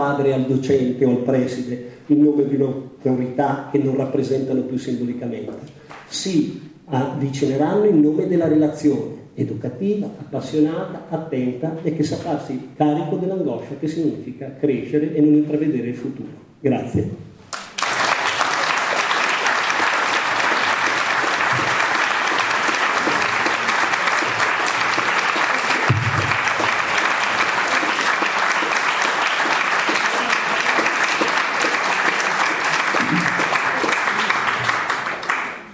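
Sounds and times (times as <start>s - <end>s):
speech: 0.0s - 17.2s
large audience applauding after a talk: 17.5s - 35.7s.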